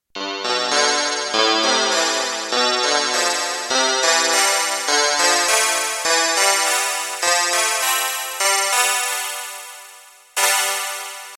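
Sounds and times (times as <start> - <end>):
Kawai K1 synth chord: 0.2 - 9.2.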